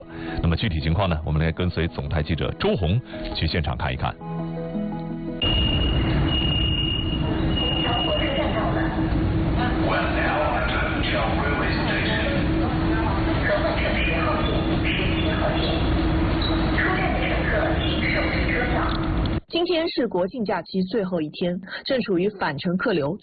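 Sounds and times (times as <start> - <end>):
speech: 0.5 - 4.8, 19.6 - 23.2
brief high whine in a railway station: 5.4 - 19.4
constant low rumble in a railway station: 5.4 - 19.4
murmur of many voices in a busy railway station: 7.7 - 19.1.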